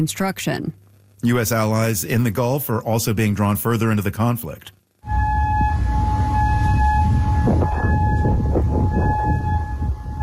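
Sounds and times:
speech: 0.0s - 5.2s
low rumbling background: 4.9s - 10.2s
air raid siren wailing: 5.0s - 10.2s.

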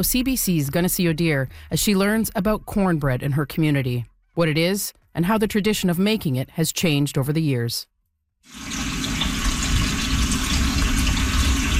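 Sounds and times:
speech: 0.0s - 9.1s
water running from a tap into a cooking pot: 8.5s - 11.7s.

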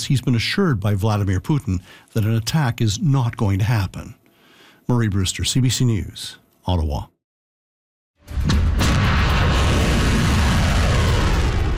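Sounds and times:
speech: 0.1s - 4.2s, 4.9s - 7.1s
volley of ballistic missiles launching with loud roar: 8.4s - 11.7s.

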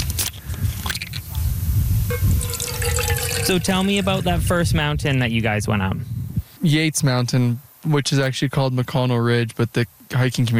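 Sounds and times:
low rumbling background: 1.3s - 6.4s
water pouring into a container: 2.1s - 4.3s
speech: 3.5s - 10.5s.

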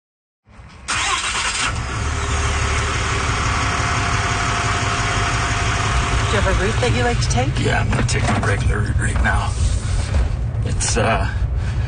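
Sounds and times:
pickup truck engine turning over and rumbling: 0.8s - 11.8s
speech: 6.5s - 9.7s, 10.6s - 11.4s.

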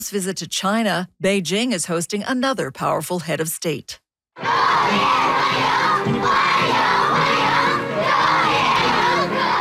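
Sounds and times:
speech: 0.0s - 6.7s
large crowd of schoolchildren shouting and cheering: 4.4s - 9.5s.

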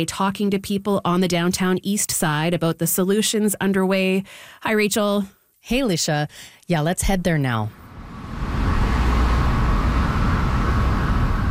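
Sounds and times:
speech: 0.0s - 8.5s
street traffic of cars and trucks outside a building in a busy downtown neighborhood: 7.8s - 11.4s.

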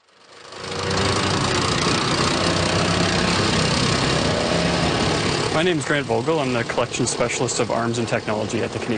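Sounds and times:
Cold War armored tank engine running on a demo track: 0.0s - 8.9s
speech: 5.6s - 8.9s.

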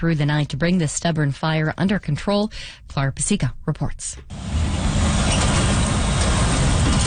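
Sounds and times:
speech: 0.0s - 4.6s
heavy truck traffic rumbling past a scrap metal yard: 4.3s - 7.0s.

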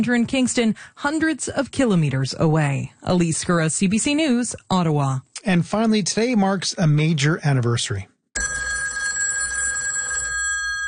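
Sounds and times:
speech: 0.0s - 8.1s
telephone bell ringing with a bright metallic clang: 8.4s - 10.8s.

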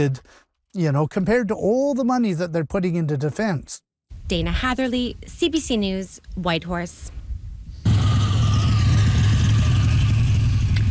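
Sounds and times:
speech: 0.0s - 7.2s
classic car engine revving: 7.8s - 10.9s.

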